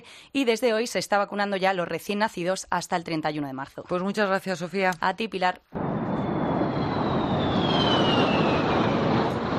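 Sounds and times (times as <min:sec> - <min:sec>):
speech: 0:00.0 - 0:05.9
two airplanes roaring overhead in Madrid rehearsing for an air parade: 0:06.0 - 0:09.5.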